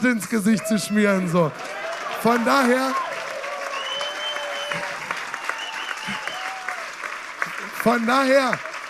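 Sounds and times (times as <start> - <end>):
speech: 0.0 - 3.1, 7.9 - 8.7
audience clapping: 0.0 - 8.8
loud whoops and cheering shouts from a crowd: 0.6 - 6.9.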